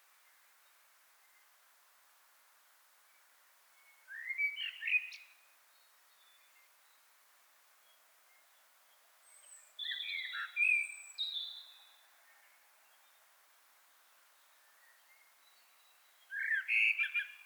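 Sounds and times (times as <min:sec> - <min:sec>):
common blackbird song Turdus merula: 0:03.1 - 0:07.2, 0:07.8 - 0:17.4.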